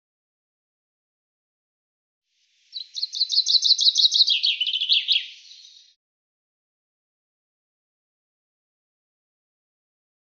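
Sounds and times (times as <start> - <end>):
common chaffinch song: 2.4 - 6.0.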